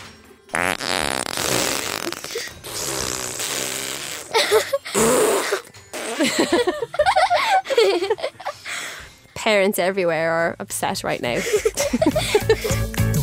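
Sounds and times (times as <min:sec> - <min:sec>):
fart sound effect from a smart speaker: 0:00.5 - 0:06.2
giggling laughter: 0:04.3 - 0:08.6, 0:11.4 - 0:12.9
speech: 0:09.5 - 0:13.1.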